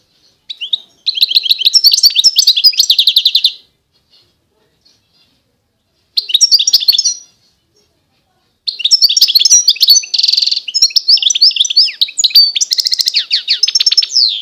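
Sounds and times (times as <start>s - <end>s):
wild European goldfinch song: 0.2s - 4.3s, 6.2s - 7.6s, 8.7s - 14.3s.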